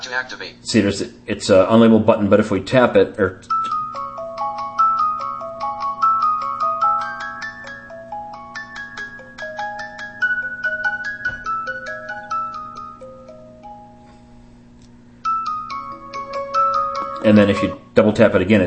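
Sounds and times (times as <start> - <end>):
soft steady hum: 0.0 - 18.6
speech: 0.1 - 3.6, 17.4 - 18.6
gentle electronic phone ringtone: 3.6 - 14.2, 15.2 - 17.8.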